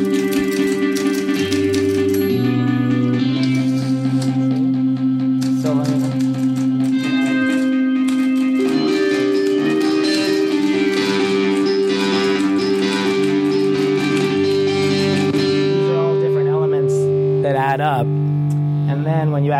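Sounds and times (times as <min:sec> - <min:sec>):
typewriter keystrokes: 0:00.0 - 0:02.4, 0:05.4 - 0:15.4
distorted rock guitar drone with sustained chords: 0:00.0 - 0:19.5.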